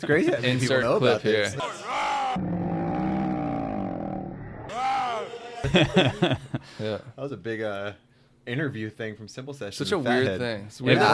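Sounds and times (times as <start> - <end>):
speech: 0.0 - 2.6, 5.7 - 11.1
person letting out a long deep guttural roar: 1.7 - 5.7
laughter: 5.2 - 7.0.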